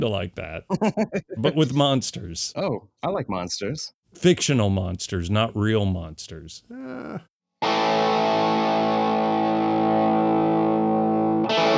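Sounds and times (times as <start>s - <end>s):
speech: 0.0s - 8.1s
laughter: 0.7s - 1.8s
electric guitar chord through a distortion effects pedal: 7.6s - 11.7s.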